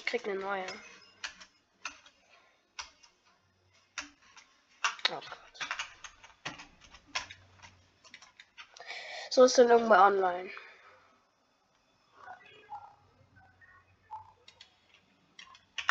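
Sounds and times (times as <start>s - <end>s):
loud computer keyboard typing: 0.0s - 8.8s, 14.1s - 15.9s
speech: 0.1s - 1.0s, 5.1s - 5.4s, 9.3s - 10.6s.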